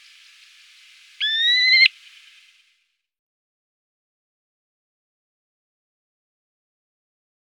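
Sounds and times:
Terek sandpiper whistle call: 1.2 - 2.0.

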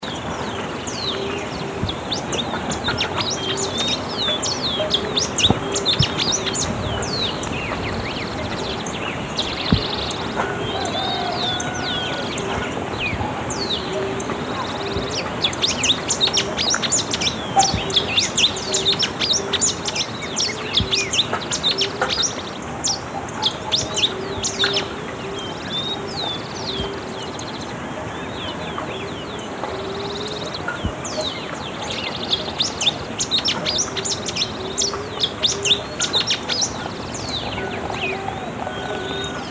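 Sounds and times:
rufous-sided warbling finch singing: 0.0 - 39.5.

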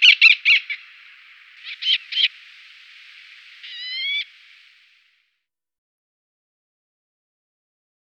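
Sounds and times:
Eleonora's falcon calling: 0.0 - 5.1.

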